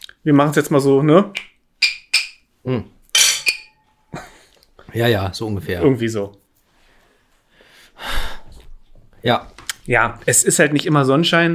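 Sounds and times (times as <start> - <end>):
speech: 0.2 - 1.5, 2.6 - 3.0, 4.9 - 6.4, 9.2 - 11.5
glasses of non-alcoholic beer clinking in a toast: 3.1 - 3.8.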